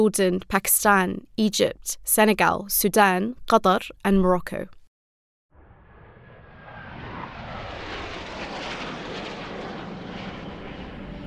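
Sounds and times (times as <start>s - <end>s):
speech: 0.0s - 4.8s
Arab coalition fighter planes passing overhead at night: 5.6s - 11.2s.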